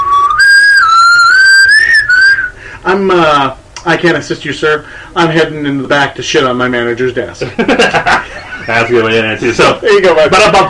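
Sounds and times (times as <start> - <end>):
person whistling to call for attention: 0.0 - 2.6
speech: 2.9 - 10.6
laughter: 7.4 - 10.6.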